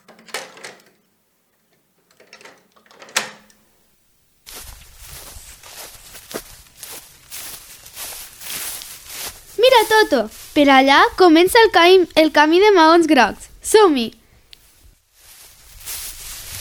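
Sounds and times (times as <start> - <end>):
constant hiss: 0.1 - 16.5
footsteps: 4.4 - 12.4, 14.4 - 16.5
soft shuffling and rustling of shoes being put on: 4.4 - 16.5
speech: 9.8 - 14.2.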